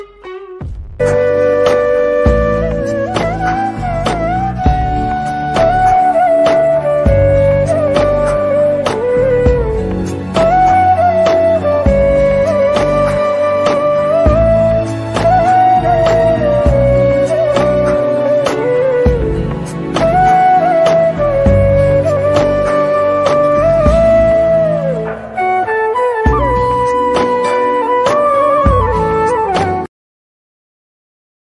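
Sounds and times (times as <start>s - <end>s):
sad flute ringtone: 1.0s - 29.9s.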